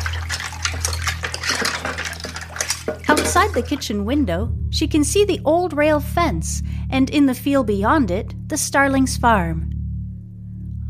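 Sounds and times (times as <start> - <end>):
plates and cutlery clinking while washing dishes: 0.0 - 3.8
kitchen faucet running water: 0.0 - 3.9
speech: 3.4 - 9.7.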